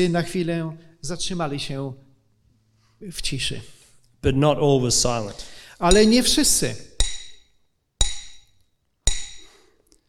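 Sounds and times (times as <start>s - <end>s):
speech: 0.0s - 2.0s, 3.0s - 6.9s
hammer striking metal with ringing blows: 5.8s - 10.0s.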